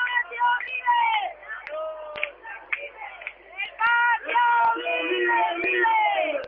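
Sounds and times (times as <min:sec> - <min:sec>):
street protest march crowd shouting and chanting: 0:00.0 - 0:06.4.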